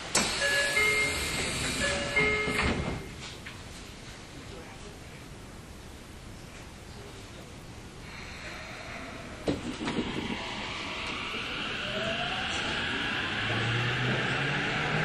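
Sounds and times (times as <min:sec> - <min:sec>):
subway train pulling away and picking up speed: 0:00.0 - 0:03.8, 0:07.9 - 0:15.0.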